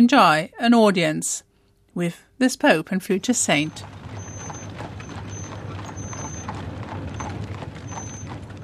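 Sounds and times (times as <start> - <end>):
speech: 0.0 - 4.0
low rumbling hum: 3.1 - 8.6
horses' hooves clattering on cobblestones: 3.2 - 8.6.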